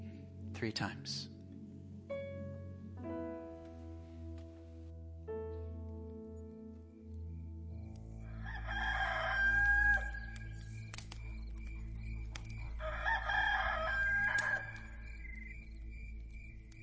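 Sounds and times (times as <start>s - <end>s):
speech: 0.6s - 1.3s
steady low drone: 1.5s - 16.8s
rooster crowing: 8.2s - 10.5s, 12.8s - 15.6s.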